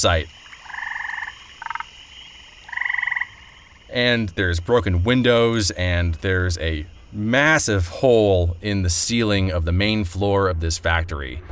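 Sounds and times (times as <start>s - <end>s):
speech: 0.0s - 0.4s, 3.9s - 11.5s
frogs croaking in rapid pulsing trills at flooded factory loading docks: 0.0s - 8.8s.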